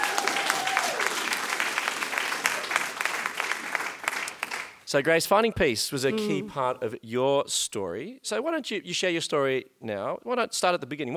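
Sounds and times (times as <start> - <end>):
crowd applauding: 0.0 - 4.8
speech: 4.9 - 11.1.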